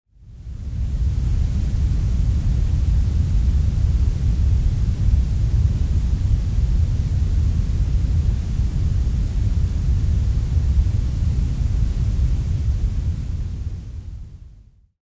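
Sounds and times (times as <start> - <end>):
grey noise with heavy bass: 0.3 - 14.8.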